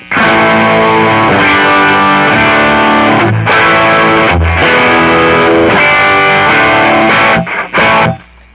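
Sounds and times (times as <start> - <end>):
heavily distorted custom electric guitar chords through amp distortion channel: 0.0 - 8.5.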